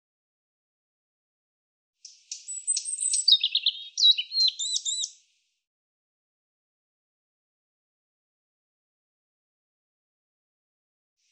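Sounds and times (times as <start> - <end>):
European robin singing: 2.0 - 5.3.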